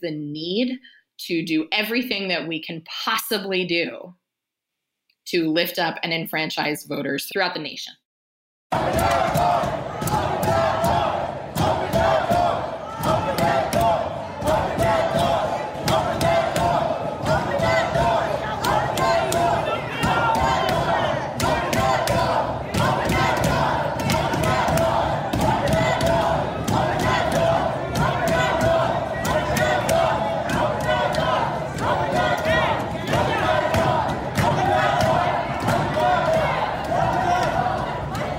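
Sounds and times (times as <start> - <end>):
speech: 0.0 - 4.2, 5.3 - 8.0, 8.7 - 9.8
large crowd shouting and chanting: 8.7 - 38.3.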